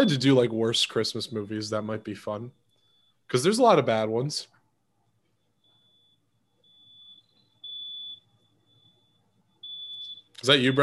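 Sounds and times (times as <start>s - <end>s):
speech: 0.0s - 2.6s, 3.3s - 4.5s, 10.4s - 10.8s
fire alarm high-pitched pulsing tone: 0.0s - 10.8s.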